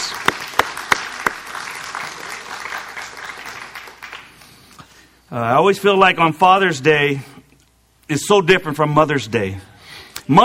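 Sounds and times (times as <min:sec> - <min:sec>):
audience applause: 0:00.0 - 0:04.4
speech: 0:05.3 - 0:07.3, 0:08.1 - 0:09.7, 0:10.3 - 0:10.4.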